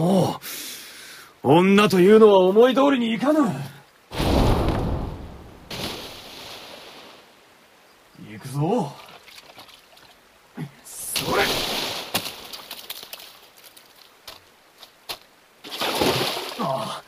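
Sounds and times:
speech: 0.0s - 0.5s, 1.4s - 3.8s, 8.5s - 9.0s
river water splashing: 4.1s - 7.4s, 8.7s - 17.0s.

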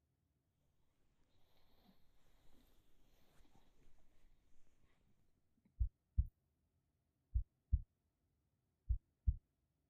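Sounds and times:
fast heartbeat: 5.8s - 6.4s, 7.3s - 8.0s, 8.9s - 9.5s.

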